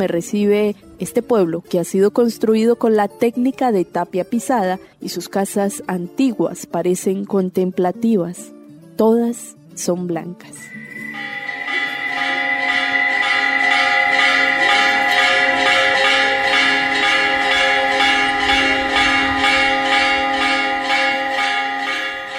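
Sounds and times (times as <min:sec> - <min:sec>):
speech: 0:00.0 - 0:11.3
parish church bells ringing in a peal on a cool morning: 0:10.6 - 0:22.3.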